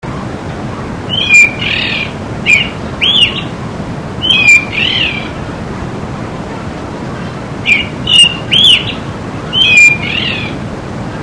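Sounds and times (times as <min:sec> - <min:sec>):
thrush calling: 0:01.1 - 0:03.6, 0:04.2 - 0:05.4, 0:07.6 - 0:10.6.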